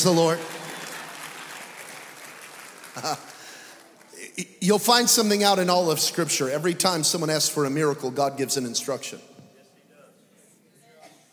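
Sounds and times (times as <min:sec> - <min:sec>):
speech: 0:00.0 - 0:00.5, 0:03.0 - 0:03.3, 0:04.4 - 0:09.3
crowd clapping: 0:00.0 - 0:05.3
laughter: 0:03.0 - 0:03.4.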